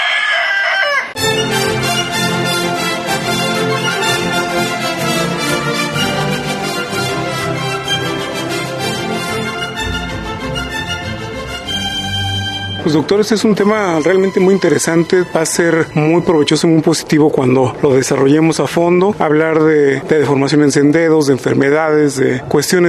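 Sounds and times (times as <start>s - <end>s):
rooster crowing: 0.0s - 1.2s
loud full music: 1.2s - 16.8s
speech: 12.8s - 22.8s.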